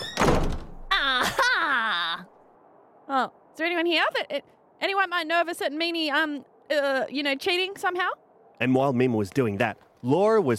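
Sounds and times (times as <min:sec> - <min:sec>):
door being forced open with a thunk and rattling crash: 0:00.0 - 0:00.9
person letting out a loud drawn-out exclamation: 0:00.9 - 0:02.3
speech: 0:03.1 - 0:10.5.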